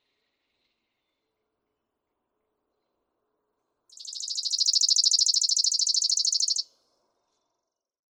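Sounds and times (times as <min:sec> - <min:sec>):
Chipping Sparrow singing a rapid mechanical trill of high chips: 0:03.9 - 0:06.6.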